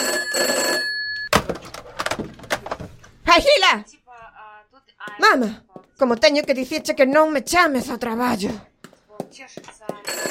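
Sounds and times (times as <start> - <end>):
telephone bell ringing: 0.0 - 1.3, 9.9 - 10.2
speech: 3.4 - 4.0, 5.1 - 8.7, 9.3 - 10.2.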